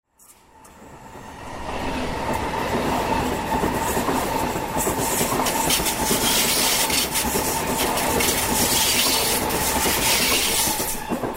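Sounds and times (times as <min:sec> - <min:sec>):
Pendolino train passing: 0:00.1 - 0:11.3.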